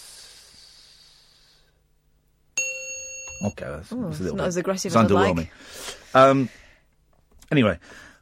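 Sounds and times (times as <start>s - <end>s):
soft breathy hiss: 0.0s - 2.0s, 5.4s - 7.0s
bright bell ding sound effect: 2.6s - 3.6s
speech: 3.4s - 6.6s, 7.5s - 8.1s.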